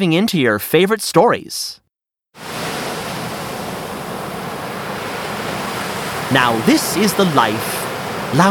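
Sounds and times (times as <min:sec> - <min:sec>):
speech: 0:00.0 - 0:01.8, 0:06.3 - 0:08.4
ocean surf roaring on a beach: 0:02.4 - 0:08.4.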